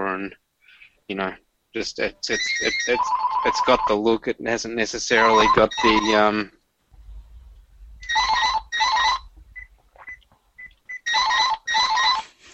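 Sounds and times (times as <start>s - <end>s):
speech: 0.2s - 0.4s, 1.1s - 6.6s
phone ringing: 2.4s - 4.2s, 5.1s - 6.3s, 8.0s - 12.3s.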